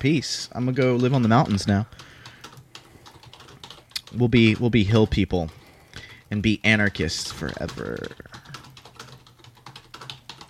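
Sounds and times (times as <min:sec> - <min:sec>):
speech: 0:00.0 - 0:02.1, 0:04.2 - 0:05.6, 0:06.3 - 0:08.5
two people typing on computer keyboards: 0:00.6 - 0:10.4.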